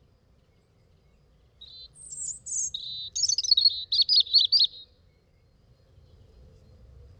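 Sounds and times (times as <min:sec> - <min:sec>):
European robin singing a short high song phrase: 0:00.5 - 0:05.4.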